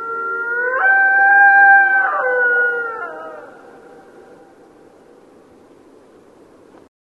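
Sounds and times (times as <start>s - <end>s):
Mexican wolf howling: 0.0s - 4.6s.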